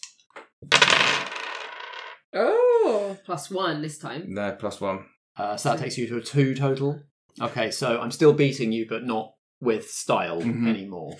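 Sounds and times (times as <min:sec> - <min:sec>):
dice being scooped up with light clicks: 0:00.0 - 0:02.2
dice tossed onto a hard surface clattering: 0:00.4 - 0:02.2
speech: 0:02.3 - 0:11.1.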